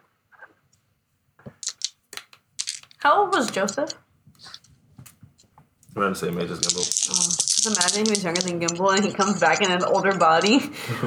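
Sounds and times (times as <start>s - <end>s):
dice shuffling in hand: 1.5s - 5.5s, 6.4s - 10.0s
speech: 3.0s - 4.6s, 6.0s - 11.0s
laughter: 8.8s - 11.0s.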